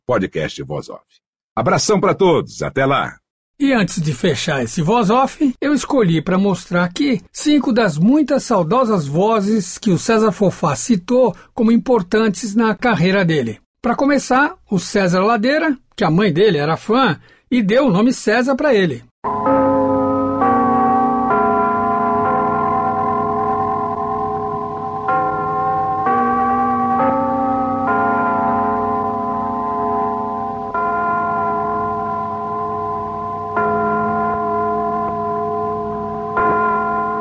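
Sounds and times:
speech: 0.1 - 19.5
carillon chiming at noon: 19.3 - 37.2.

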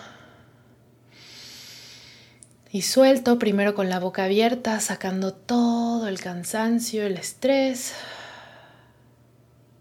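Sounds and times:
deep inhale during breathing exercise: 0.0 - 2.4, 7.9 - 9.1
speech: 2.7 - 8.2.

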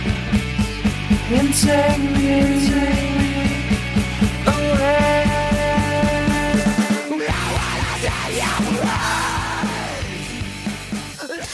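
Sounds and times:
loud dense hardcore band with pounding drums: 0.0 - 11.5
speech: 1.3 - 3.3
screamed vocals of a Christian hardcore song: 6.6 - 10.3.

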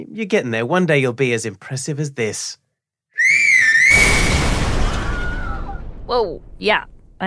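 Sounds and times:
speech: 0.0 - 2.6, 6.1 - 7.2
loud shrill human whistle: 3.1 - 4.4.

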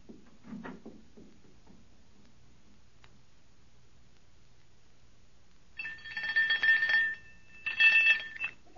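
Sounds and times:
doorbell ringing: 5.8 - 8.6.

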